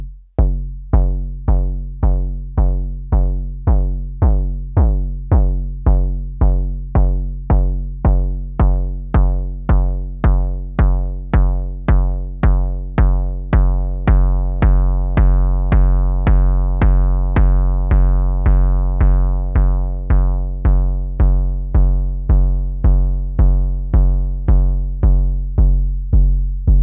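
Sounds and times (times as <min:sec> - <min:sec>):
bass drum hits: 0:00.4 - 0:26.8.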